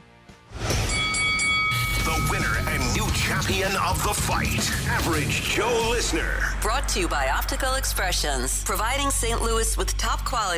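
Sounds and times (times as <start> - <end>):
metallic bell ringing: 0.8 - 2.9
speech: 2.2 - 10.5.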